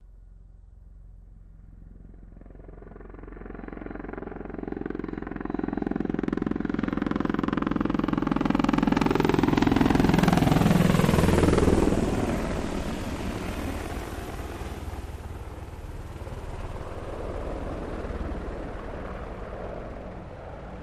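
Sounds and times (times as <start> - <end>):
AH-64 Apache helicopter: 0.2 - 20.8.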